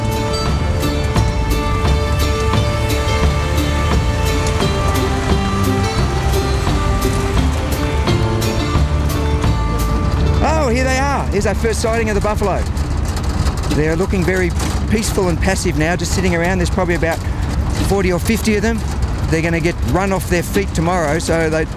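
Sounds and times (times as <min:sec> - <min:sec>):
truck driving with road and engine noise: 0:00.0 - 0:21.7
truck rattles and knocks: 0:00.0 - 0:21.7
speech: 0:11.4 - 0:12.8, 0:13.7 - 0:21.7.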